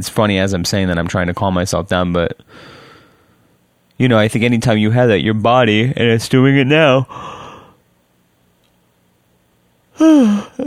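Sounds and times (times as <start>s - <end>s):
speech: 0.0s - 2.8s, 4.0s - 7.4s, 10.0s - 10.6s
person yawning: 10.0s - 10.6s.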